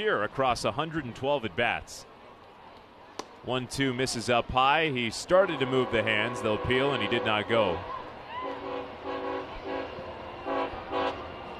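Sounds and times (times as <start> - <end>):
speech: 0.0 - 2.1, 3.4 - 8.0
train rolling by a ballpark: 5.2 - 11.5
passing train sounding a rhythmic horn jingle: 5.5 - 7.5, 8.4 - 11.5.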